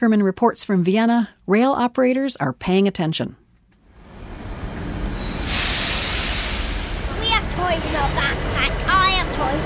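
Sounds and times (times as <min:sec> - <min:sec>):
speech: 0:00.0 - 0:03.4
electric train rumbling into Vienna's main train station: 0:03.9 - 0:09.6
electric train high-pitched brake squeal: 0:04.0 - 0:06.6
burst of hissing air from electric train: 0:04.1 - 0:08.0.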